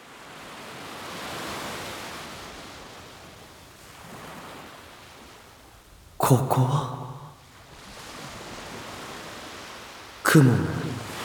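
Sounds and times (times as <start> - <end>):
ocean waves washing: 6.2 - 11.2
speech: 6.3 - 6.9, 10.3 - 10.8.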